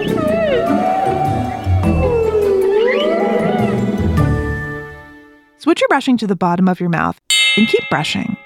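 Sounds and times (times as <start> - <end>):
humpback whale song: 0.0 - 4.2
speech: 5.9 - 8.4.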